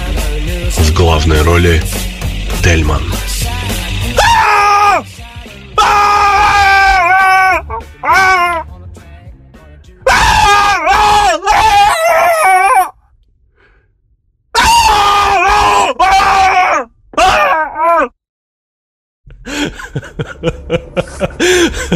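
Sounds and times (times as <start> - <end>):
speech: 1.0 - 2.0, 2.6 - 3.1
recorded horror-film screams: 2.4 - 8.7, 10.0 - 13.0, 14.5 - 18.1
groaning cries: 4.2 - 5.0, 5.8 - 8.7, 10.0 - 13.0, 14.6 - 18.1
laughter: 19.3 - 21.9.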